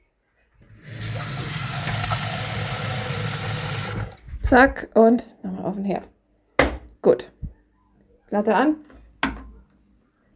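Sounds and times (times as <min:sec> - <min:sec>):
water pouring into a cooking pot of macaroni: 0:00.8 - 0:04.2
speech: 0:04.5 - 0:06.1, 0:07.0 - 0:07.3, 0:08.3 - 0:08.9.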